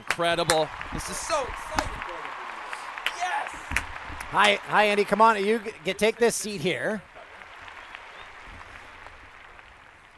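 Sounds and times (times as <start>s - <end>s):
studio audience applauding a guest: 0.0s - 10.1s
speech: 0.2s - 1.9s, 4.3s - 7.1s.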